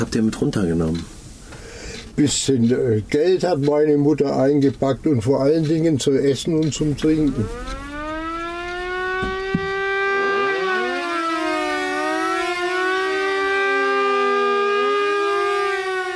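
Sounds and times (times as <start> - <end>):
speech: 0.0 - 1.2, 2.2 - 7.8
air raid siren wailing: 7.0 - 16.1.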